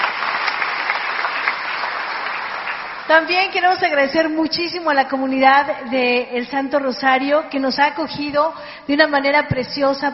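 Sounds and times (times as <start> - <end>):
audience applause at a church celebration with a bishop: 0.0 - 3.1
speech: 3.1 - 10.1.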